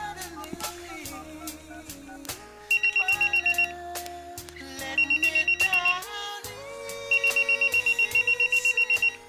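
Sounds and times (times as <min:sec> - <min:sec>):
steady music: 0:00.0 - 0:09.2
telephone ringing with rapid high trilling rings: 0:02.7 - 0:03.7, 0:04.9 - 0:06.0, 0:07.1 - 0:09.2.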